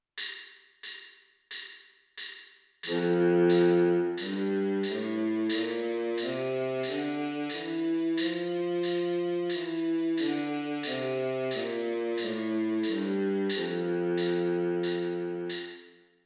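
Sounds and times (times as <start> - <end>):
baritone sax playing a D major scale: 2.9 - 15.8.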